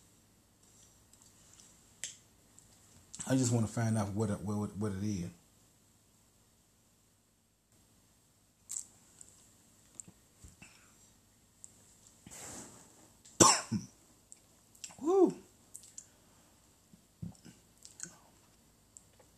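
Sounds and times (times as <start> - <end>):
speech: 3.3 - 5.4
person coughing after drinking whiskey: 13.4 - 13.9.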